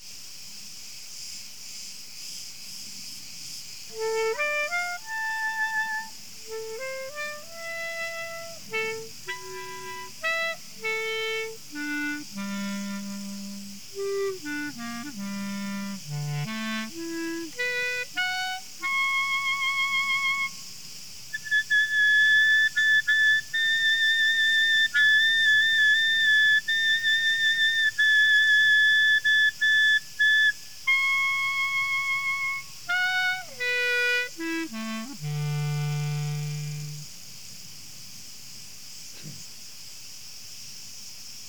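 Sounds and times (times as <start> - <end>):
crickets chirping high-pitched: 0.8 - 41.4.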